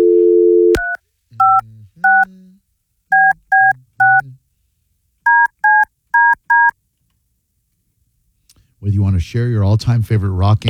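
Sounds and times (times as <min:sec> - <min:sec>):
telephone dial tone: 0:00.0 - 0:02.3
telephone touch-tone keypad beeps: 0:00.0 - 0:02.3, 0:03.1 - 0:04.2, 0:05.3 - 0:06.7
speech: 0:09.2 - 0:10.6.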